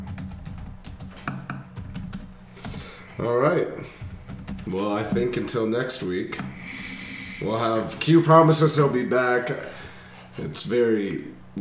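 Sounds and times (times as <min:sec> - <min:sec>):
typing on a computer keyboard: 0:00.0 - 0:02.8, 0:04.0 - 0:04.7
speech: 0:03.2 - 0:04.0, 0:04.7 - 0:06.7, 0:07.4 - 0:09.8, 0:10.4 - 0:11.4.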